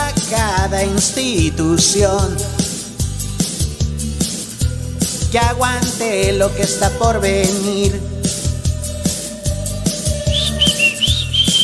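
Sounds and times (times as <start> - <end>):
thumping musical beat: 0.0 - 11.6
speech: 0.3 - 2.7, 5.3 - 8.1
high gliding whistle: 10.0 - 11.6.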